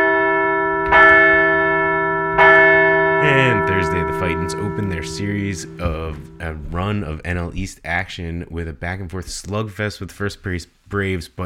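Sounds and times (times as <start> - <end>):
resonant bell strikes ringing: 0.0 - 7.0
speech: 3.6 - 11.4.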